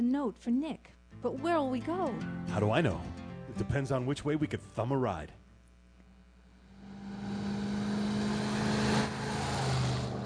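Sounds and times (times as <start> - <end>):
speech: 0.1 - 5.4
car whizzing past on a road: 6.8 - 10.2.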